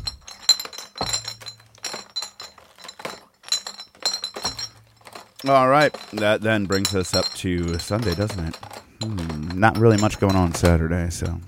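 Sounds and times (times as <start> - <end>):
glasses clinking together in a toast: 0.0 - 11.4
speech: 5.4 - 11.4.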